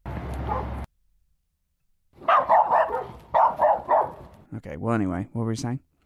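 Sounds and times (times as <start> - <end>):
dogs barking: 0.4 - 0.9, 2.2 - 4.4
speech: 4.6 - 5.9.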